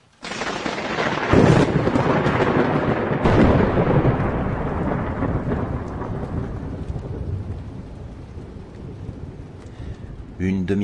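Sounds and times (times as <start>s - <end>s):
heavy rain: 0.0s - 10.8s
loud thunder cracking and rumbling: 0.2s - 10.8s.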